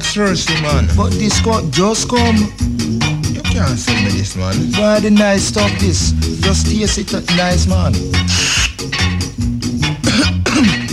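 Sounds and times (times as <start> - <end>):
speech: 0.2 - 3.0, 3.6 - 8.7
raspy strained breaths: 8.2 - 8.9
person coughing hard after smoking: 10.0 - 10.9.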